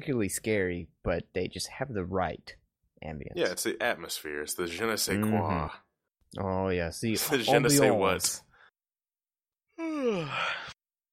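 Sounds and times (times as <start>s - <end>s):
speech: 0.0s - 8.5s, 10.0s - 10.7s
person yawning: 9.8s - 10.8s.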